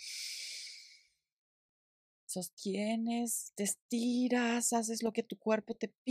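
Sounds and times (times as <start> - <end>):
deep inhale through the nose: 0.0 - 1.0
speech: 2.3 - 6.0.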